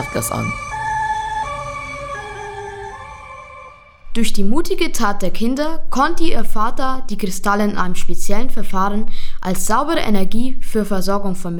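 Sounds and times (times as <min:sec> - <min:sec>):
speech: 0:00.0 - 0:00.7, 0:04.2 - 0:11.5
emergency vehicle sirens: 0:00.0 - 0:04.1.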